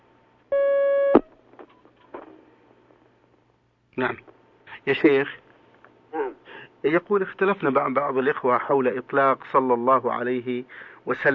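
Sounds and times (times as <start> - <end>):
telephone line beep of an incoming phone call: 0.5 - 1.2
speech: 4.0 - 5.4, 6.8 - 11.3.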